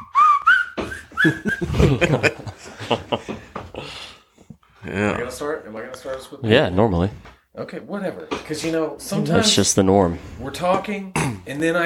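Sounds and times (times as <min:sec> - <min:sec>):
person whistling a tune: 0:00.0 - 0:01.7
people chuckling and laughing: 0:01.1 - 0:03.9
speech: 0:01.2 - 0:03.4, 0:05.4 - 0:11.8.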